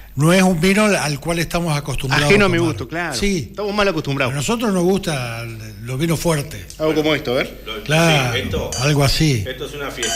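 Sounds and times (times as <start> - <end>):
speech: 0.2 - 10.1
wine glasses clinking in a toast: 8.5 - 9.3, 9.9 - 10.1.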